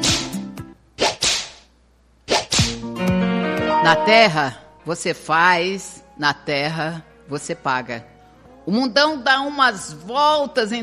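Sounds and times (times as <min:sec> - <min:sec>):
whip cracks with whooshing tail: 0:00.0 - 0:00.4, 0:01.0 - 0:01.7, 0:02.3 - 0:02.9
speech: 0:03.8 - 0:08.1, 0:08.7 - 0:10.8.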